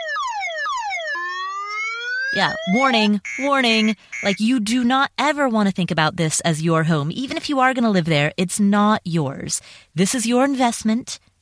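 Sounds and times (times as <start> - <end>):
electronic siren sweeping downward in pitch: 0.0 - 4.4
speech: 2.3 - 11.3.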